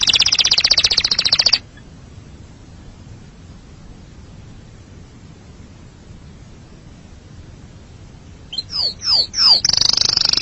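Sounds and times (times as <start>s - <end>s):
canary singing a fast even trill: 0.0s - 1.6s, 8.5s - 10.4s.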